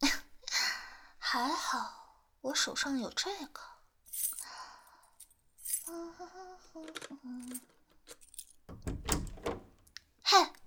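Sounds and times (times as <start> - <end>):
speech: 1.4 - 4.4, 5.9 - 7.8
metal keys jingling and clinking: 7.5 - 9.8
bedroom door lock turning: 8.7 - 9.9.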